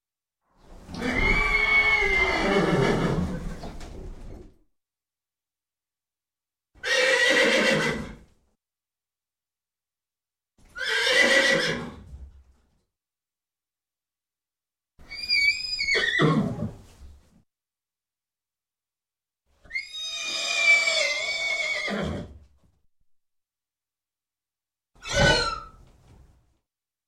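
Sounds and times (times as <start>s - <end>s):
horse squealing: 0.9s - 3.6s, 6.8s - 8.1s, 10.7s - 11.9s, 15.1s - 16.7s, 19.7s - 22.3s, 25.0s - 25.8s.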